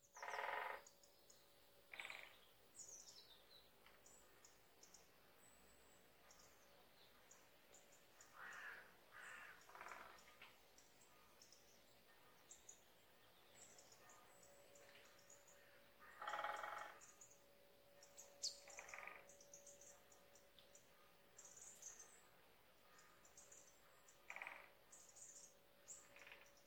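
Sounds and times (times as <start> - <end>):
great spotted woodpecker drumming: 0.1 - 0.9, 1.9 - 2.4, 8.4 - 10.4, 16.0 - 17.4, 18.0 - 19.8, 24.2 - 24.8, 26.0 - 26.6.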